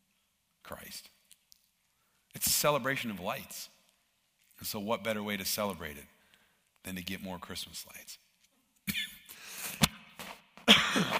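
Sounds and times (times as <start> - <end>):
speech: 0.7 - 1.2, 2.5 - 3.8, 4.6 - 6.2, 6.8 - 8.2
man coughing: 8.9 - 9.4, 10.6 - 11.1.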